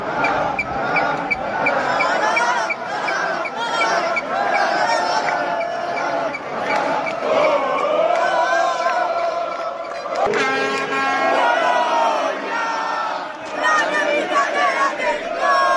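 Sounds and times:
dense outdoor crowd of football fans cheering and shouting in a city square: 0.0s - 15.7s
football fans chanting: 0.0s - 15.7s
horn-like blare: 8.9s - 13.2s.

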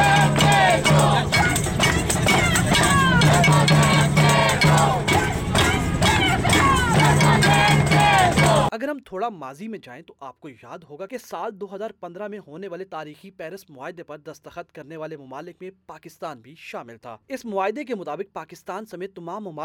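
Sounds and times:
large rally crowd chanting slogans in unison: 0.0s - 8.7s
speech: 8.9s - 19.6s.

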